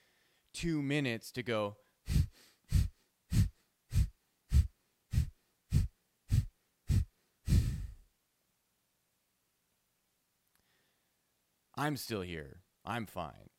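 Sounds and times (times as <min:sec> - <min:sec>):
speech: 0:00.6 - 0:01.8, 0:11.8 - 0:13.5
forceful exhalations in a yoga breathing exercise: 0:02.1 - 0:08.0.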